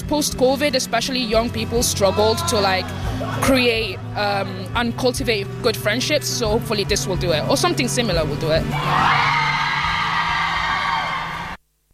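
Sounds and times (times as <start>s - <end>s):
speech: 0.1s - 9.4s
crowd of women screaming and whooping: 8.7s - 11.6s.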